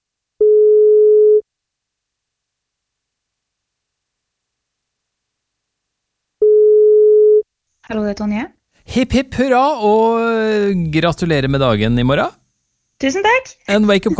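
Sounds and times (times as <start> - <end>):
telephone ringback tone while placing a call: 0.4 - 1.4, 6.4 - 7.4
speech: 7.9 - 12.4, 13.0 - 14.1.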